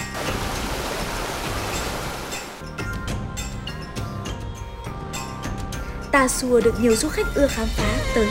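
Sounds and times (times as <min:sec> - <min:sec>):
mountain stream flowing with gurgling splashes: 0:00.0 - 0:02.6
speech: 0:06.1 - 0:08.3.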